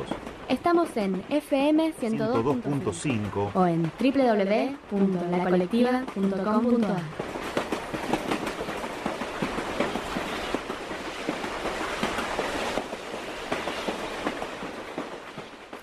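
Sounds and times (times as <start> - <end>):
passenger train rumbling through a city neighbourhood: 0.0 - 15.8
speech: 0.5 - 7.3.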